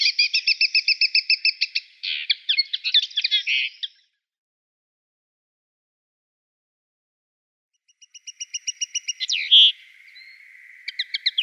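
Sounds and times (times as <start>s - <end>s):
Eurasian linnet song with chirps and twittering: 0.0s - 4.2s, 7.8s - 11.4s.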